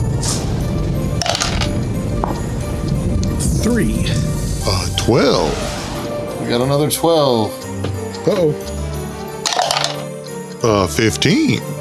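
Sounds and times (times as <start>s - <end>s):
low rumble: 0.0s - 8.1s
bat dice clattering and tumbling across a hard surface: 1.2s - 1.7s, 9.4s - 10.2s
speech: 3.8s - 4.3s, 5.1s - 5.7s, 6.5s - 8.8s, 10.6s - 11.7s.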